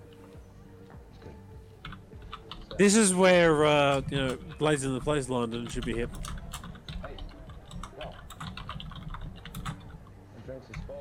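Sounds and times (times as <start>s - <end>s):
low murmur: 0.0s - 10.9s
rapid typing on a computer keyboard: 1.8s - 3.0s, 3.7s - 10.2s
speech: 2.8s - 6.3s.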